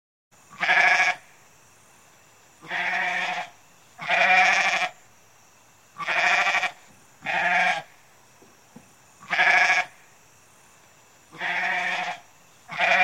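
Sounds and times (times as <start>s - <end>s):
goat bleating: 0.5s - 1.2s, 2.6s - 4.9s, 6.0s - 7.9s, 9.2s - 9.9s, 11.3s - 13.0s.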